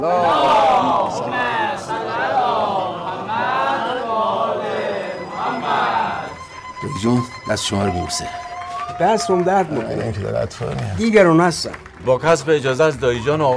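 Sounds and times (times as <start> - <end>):
speech: 0.0 - 0.6, 6.9 - 13.5
crowd chanting salawat in unison at a gathering: 0.0 - 6.6.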